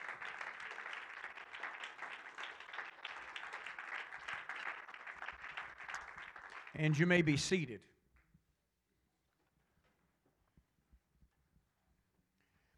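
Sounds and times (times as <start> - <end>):
church congregation clapping hands in worship: 0.0 - 7.8
speech: 6.8 - 8.0.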